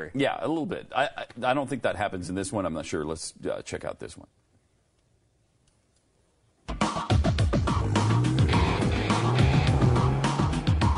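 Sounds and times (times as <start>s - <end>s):
speech: 0.0s - 4.4s
self-driving car engine roaring around a track: 7.7s - 10.8s.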